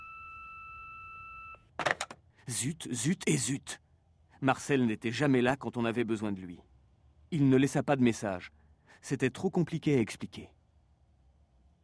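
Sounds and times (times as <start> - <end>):
doctor's answering machine beep: 0.0 - 1.6
speech: 2.5 - 3.8, 4.4 - 6.7, 7.3 - 10.6.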